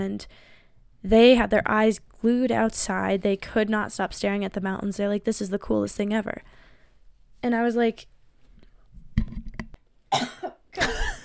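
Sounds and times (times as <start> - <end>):
speech: 0.0 - 6.6, 7.4 - 8.1, 10.1 - 11.2
person coughing: 10.1 - 11.2.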